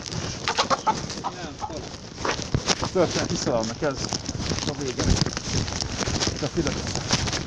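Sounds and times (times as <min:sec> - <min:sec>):
flock of hens clucking and cackling: 0:00.2 - 0:02.0
speech: 0:02.9 - 0:07.3.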